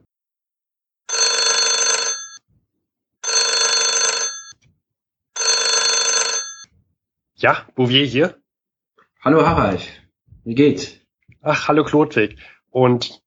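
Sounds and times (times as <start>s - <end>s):
telephone ringing: 1.1s - 2.4s, 3.2s - 4.6s, 5.4s - 6.7s
speech: 7.4s - 8.4s, 9.2s - 13.2s.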